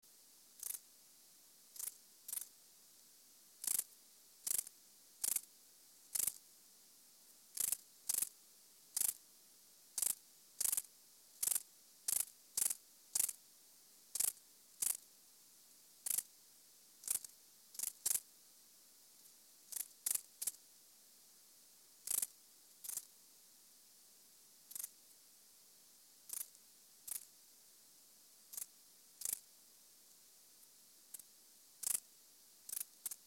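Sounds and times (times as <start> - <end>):
Stauroderus scalaris stridulating at 24°C: 0.6 - 0.9, 1.7 - 2.5, 3.6 - 5.5, 6.1 - 6.4, 7.5 - 9.2, 10.0 - 13.4, 14.1 - 15.1, 16.0 - 16.3, 17.0 - 18.3, 19.6 - 20.6, 22.0 - 23.1, 24.7 - 25.0, 26.3 - 27.3, 28.5 - 29.5, 31.8 - 33.2.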